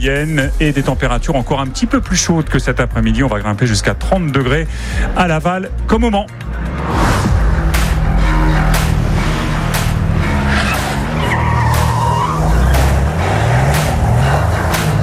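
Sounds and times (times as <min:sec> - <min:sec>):
speech: 0:00.0 - 0:07.0
racing cars roaring at full speed during the 24 Hours of Le Mans: 0:06.4 - 0:15.0.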